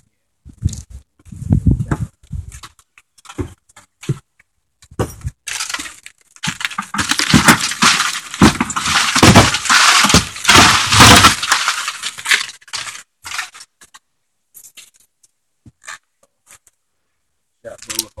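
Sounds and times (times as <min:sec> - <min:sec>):
broken glass crunching under booted feet in a building: 0:05.0 - 0:14.0.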